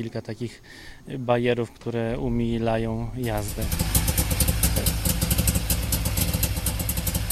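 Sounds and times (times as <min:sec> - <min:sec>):
speech: 0:00.0 - 0:04.0, 0:04.8 - 0:05.1
modern eco-friendly 100-horsepower Syrena car engine running: 0:03.2 - 0:07.2.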